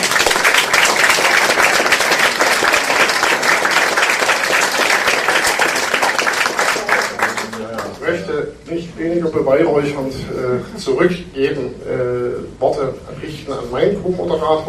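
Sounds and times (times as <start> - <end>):
crowd applauding at a literary reading-stage event: 0.0 - 8.2
speech: 8.7 - 14.6.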